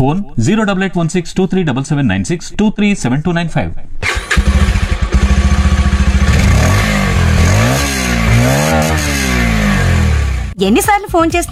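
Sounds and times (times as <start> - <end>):
speech: 0.0 - 4.5, 10.6 - 11.4
motorcycle engine revving: 4.0 - 10.6.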